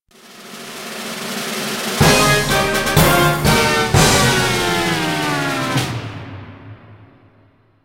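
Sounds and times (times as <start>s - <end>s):
game losing background music: 2.0s - 6.6s.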